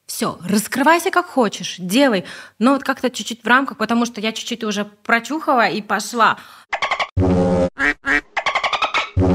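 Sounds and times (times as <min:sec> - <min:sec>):
speech: 0:00.2 - 0:06.8
dolphin-like chirps and squeaks used as a censor bleep: 0:08.1 - 0:09.2.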